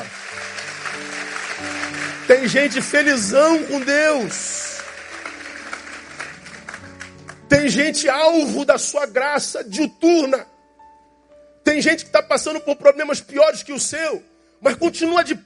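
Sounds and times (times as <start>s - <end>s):
congregation applauding: 0.0s - 7.6s
speech: 2.3s - 4.5s, 7.6s - 10.5s, 11.8s - 15.4s
man speaking loudly: 2.3s - 4.6s, 7.5s - 10.5s, 11.7s - 15.4s.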